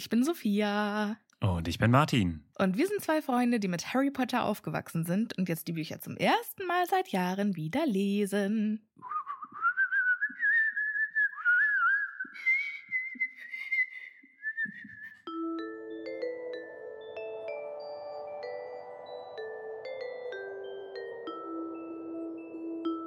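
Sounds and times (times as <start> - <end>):
speech: 0.0 - 9.2
person whistling a warbling tune imitating a little bird: 9.0 - 15.3
soft sustained chiming tones: 15.3 - 23.0.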